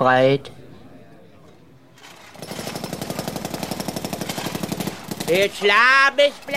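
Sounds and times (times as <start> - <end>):
speech: 0.0 - 0.6, 5.3 - 6.5
jackhammer pounding on a clinic construction site: 2.0 - 6.5.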